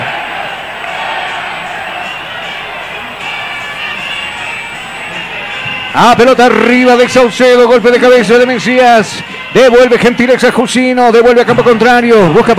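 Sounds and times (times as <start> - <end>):
large stadium crowd of football fans singing a chant during a match: 0.0 - 5.8
speech: 6.0 - 12.5.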